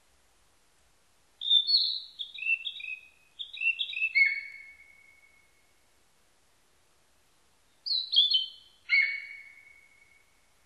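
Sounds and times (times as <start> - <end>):
Narcissus flycatcher whistled song: 1.4 - 5.3, 7.9 - 10.1.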